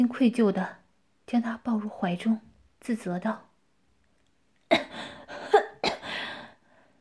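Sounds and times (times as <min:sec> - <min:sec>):
speech: 0:00.0 - 0:03.5
breathy coughs: 0:04.7 - 0:06.3.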